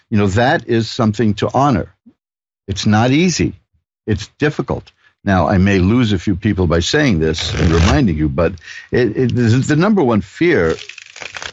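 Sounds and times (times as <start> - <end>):
speech: 0.1 - 2.0, 2.7 - 11.4
deck of cards being shuffled: 7.4 - 8.1, 10.5 - 11.5.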